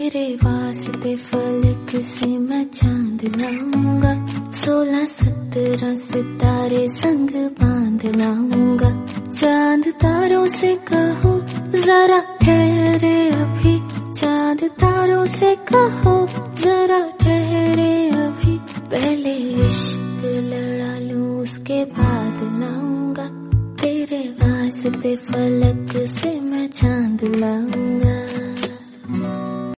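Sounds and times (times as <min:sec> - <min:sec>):
woman singing a Hindi song: 0:00.0 - 0:29.0.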